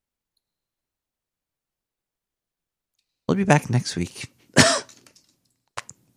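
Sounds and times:
speech: 3.3 - 4.4
person coughing: 4.6 - 5.0
throat clearing: 4.6 - 5.0.

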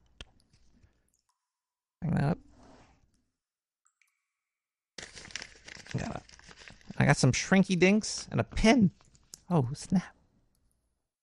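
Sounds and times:
paper and plastic packaging of a mail package crinkling and tearing: 5.0 - 7.2
speech: 7.2 - 10.2.

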